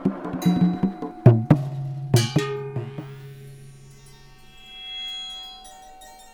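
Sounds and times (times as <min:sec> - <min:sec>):
bomba hand drum played with hard hits and softer touches: 0:00.0 - 0:03.5.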